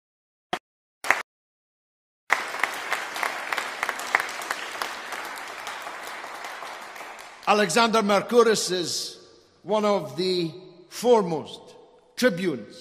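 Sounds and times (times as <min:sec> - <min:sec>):
audience applause: 0:02.3 - 0:07.8
speech: 0:07.5 - 0:12.7.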